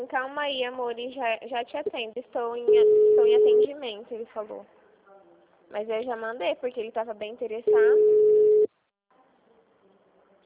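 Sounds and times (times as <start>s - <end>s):
speech: 0.0s - 4.8s, 5.7s - 8.3s
telephone tone while a call is being dialed: 2.7s - 3.7s, 7.7s - 8.7s.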